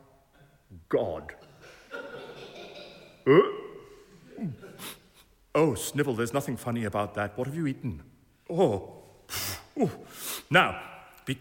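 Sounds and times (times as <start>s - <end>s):
speech: 0.9s - 1.5s, 3.2s - 3.6s, 5.6s - 9.0s, 9.8s - 11.3s
laughter: 1.5s - 3.2s
loud comical fart: 3.3s - 3.6s.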